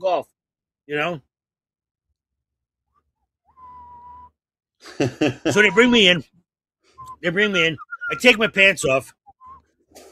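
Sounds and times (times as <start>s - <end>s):
speech: 0.9s - 1.3s, 4.8s - 6.4s, 7.2s - 9.2s
person whistling a game show tune: 3.5s - 4.3s, 7.0s - 8.3s
laughter: 4.8s - 6.1s.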